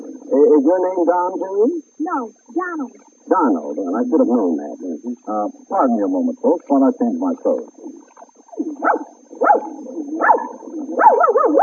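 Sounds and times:
speech: 0.6s - 8.0s, 8.8s - 11.6s
small dog barking: 8.8s - 11.6s.

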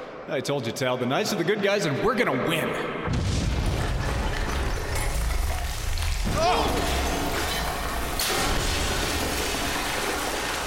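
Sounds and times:
speech: 0.3s - 3.4s
loud explosion blowing up a wall: 3.0s - 10.2s
roar of crumbling wall debris: 3.1s - 10.6s.

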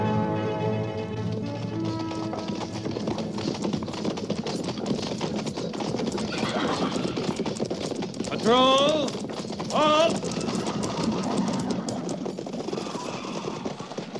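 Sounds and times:
cavalry patrol horse hooves clip-clopping: 0.1s - 14.1s
horses whinnying: 1.7s - 14.1s.

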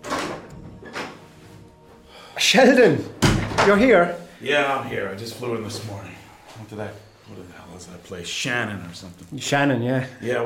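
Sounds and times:
door swinging open: 0.0s - 1.4s
speech: 2.4s - 10.4s.

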